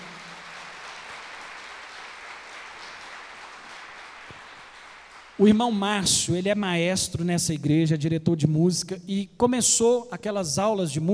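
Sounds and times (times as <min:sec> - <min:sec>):
audience applauding: 0:00.0 - 0:05.8
speech: 0:05.4 - 0:11.1.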